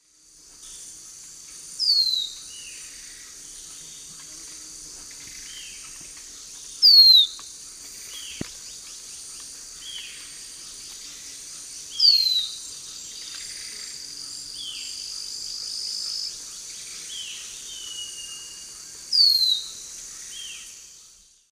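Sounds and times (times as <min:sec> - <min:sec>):
Pithys albifrons singing in the Eastern Lowlands of South America: 0:01.8 - 0:21.4.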